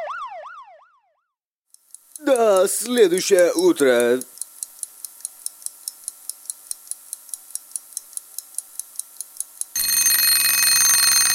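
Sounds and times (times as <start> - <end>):
clock ticking: 1.7 - 10.4
speech: 2.8 - 4.3
alarm clock ringing: 9.8 - 11.3.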